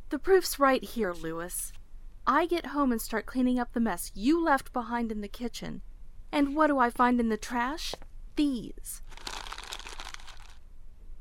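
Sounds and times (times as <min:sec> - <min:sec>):
speech: 0:00.1 - 0:09.3
printing paper ream wrappers crinkling: 0:09.0 - 0:10.6.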